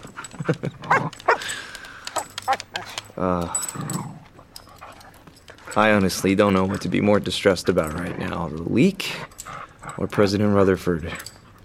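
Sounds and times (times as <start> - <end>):
dog collar tags jingling: 0.0 - 11.6
excited dog panting: 0.0 - 11.6
speech: 0.5 - 1.0, 3.2 - 3.9, 5.8 - 9.3, 10.0 - 11.3
excited dog high whine: 0.8 - 5.8.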